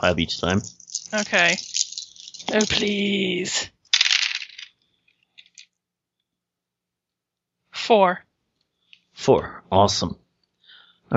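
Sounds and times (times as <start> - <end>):
speech: 0.0 - 3.8, 7.8 - 8.3, 9.2 - 10.2
dice clattering across a hard table: 0.4 - 3.2, 3.9 - 5.7.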